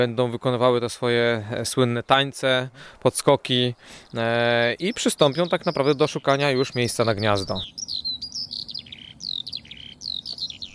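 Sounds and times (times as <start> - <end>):
speech: 0.0 - 8.0
skylark singing: 3.7 - 10.7.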